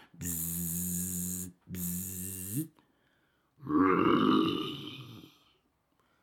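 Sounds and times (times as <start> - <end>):
person imitating a lion's weak sleepy growl: 0.0 - 2.7, 3.6 - 5.4
speech: 2.6 - 2.8.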